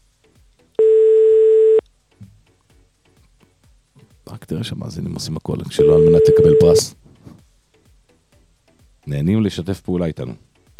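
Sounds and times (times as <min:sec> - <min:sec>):
steady telephone tone while a call is being dialed: 0:00.8 - 0:01.8, 0:05.8 - 0:06.9
speech: 0:04.5 - 0:07.0, 0:09.1 - 0:10.5.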